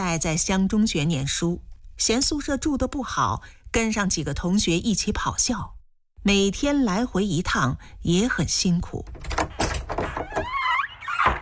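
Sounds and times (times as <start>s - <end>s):
speech: 0.0s - 9.3s
wooden door thunks: 9.0s - 11.4s
door knock: 9.1s - 10.5s.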